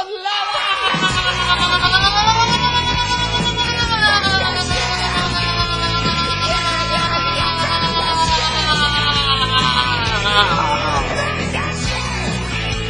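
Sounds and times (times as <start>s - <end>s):
laughter: 0.0s - 12.4s
crowd of many voices shouting, cheering and whooping: 0.0s - 12.8s.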